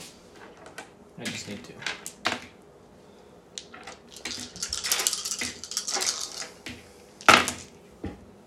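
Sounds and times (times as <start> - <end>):
six-sided dice rolled at a tabletop role-playing game: 0.4 - 2.6, 3.6 - 7.7
speech: 1.2 - 2.0.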